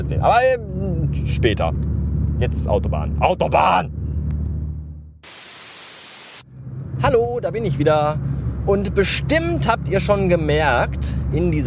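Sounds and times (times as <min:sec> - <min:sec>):
speech: 0:00.0 - 0:04.0, 0:07.0 - 0:11.6
white noise hiss used as a segment separator: 0:05.2 - 0:06.4.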